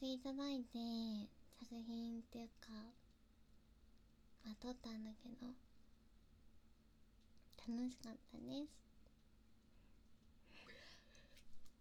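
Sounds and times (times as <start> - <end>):
speech: 0.0 - 3.0, 4.4 - 5.7, 7.6 - 8.9
short faint breaths: 9.8 - 11.5.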